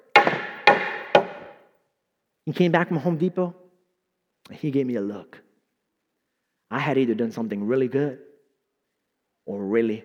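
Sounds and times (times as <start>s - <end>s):
hammer striking a wall to knock it down: 0.0s - 1.6s
speech: 2.5s - 3.6s, 4.5s - 5.4s, 6.7s - 8.3s, 9.5s - 10.0s.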